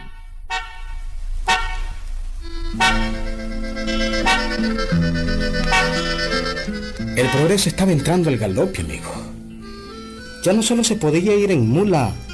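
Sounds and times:
vehicle horn honking as a vehicle enters a village: 0.0 - 9.1
speech: 7.2 - 9.2, 10.4 - 12.2.

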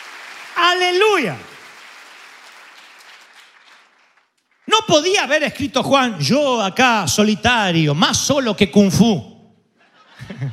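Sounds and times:
church congregation applauding: 0.0 - 5.4
speech: 0.7 - 1.5, 4.8 - 9.3, 10.2 - 10.5
laughter: 9.8 - 10.5.

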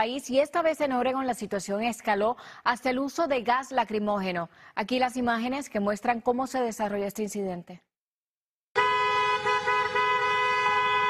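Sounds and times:
speech: 0.0 - 7.9
car horn honking at a protest: 8.8 - 11.0.

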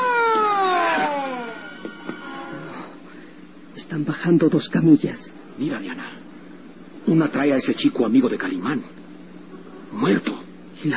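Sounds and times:
ambulance siren wailing: 0.0 - 3.0
speech: 4.0 - 6.2, 7.1 - 9.0, 9.9 - 10.9.

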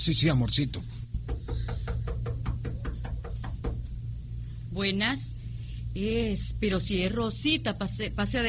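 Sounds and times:
speech: 0.0 - 1.2, 4.8 - 5.4, 6.0 - 8.4
low continuous hum: 0.0 - 8.4
knocking on a door: 1.1 - 4.0.

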